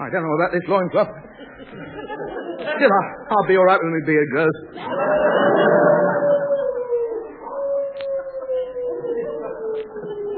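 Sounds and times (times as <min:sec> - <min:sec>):
speech: 0:00.0 - 0:06.0
laughter: 0:01.2 - 0:03.2, 0:04.8 - 0:06.4
dog howling: 0:04.8 - 0:10.3.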